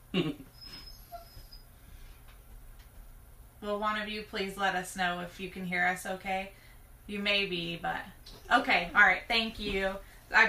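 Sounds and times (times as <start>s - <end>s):
speech: 0.1s - 0.5s, 3.6s - 10.4s
dog whimpering and yelping: 0.5s - 1.7s.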